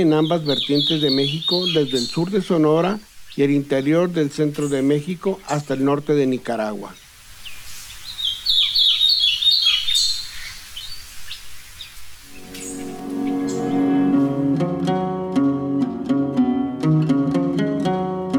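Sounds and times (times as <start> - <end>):
speech: 0.0 - 7.0
small insect-eating resident bird singing high thin chirping notes: 0.0 - 15.1
plucked instrumental music: 12.2 - 18.3.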